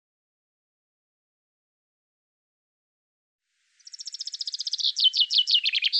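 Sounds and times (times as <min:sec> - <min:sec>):
common chaffinch song: 0:03.5 - 0:05.9.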